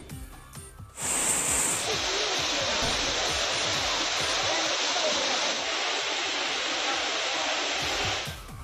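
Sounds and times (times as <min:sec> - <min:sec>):
loud steady roar of rushing water: 0:01.0 - 0:08.4.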